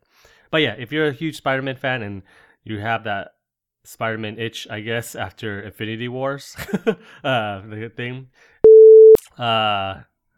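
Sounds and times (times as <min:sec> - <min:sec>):
speech: 0:00.5 - 0:08.5, 0:09.4 - 0:10.1
censor beep: 0:08.6 - 0:09.2.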